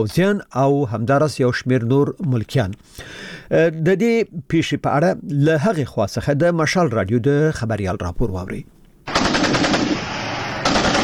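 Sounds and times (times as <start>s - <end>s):
speech: 0.0s - 9.8s
heavy weapons machine-gun fire at Kurram on the Pakistan-Afghanistan border: 9.1s - 11.0s.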